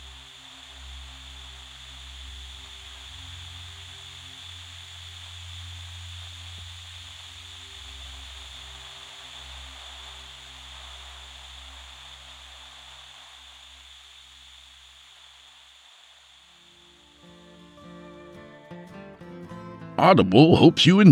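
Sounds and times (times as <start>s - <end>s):
broadband hiss of television static: 0.0s - 18.5s
low hum: 0.0s - 18.5s
speech: 20.0s - 21.1s.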